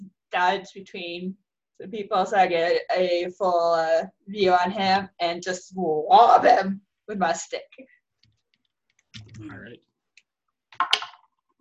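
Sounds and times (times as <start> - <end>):
speech: 0.4 - 7.9, 9.4 - 9.8
dice tumbling across a hard tabletop: 10.8 - 11.4.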